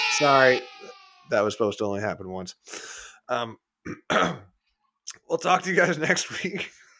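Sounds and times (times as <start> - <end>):
speech: 0.2 - 0.7, 1.3 - 4.5, 5.1 - 6.8
person clearing phlegm from throat: 3.8 - 4.5.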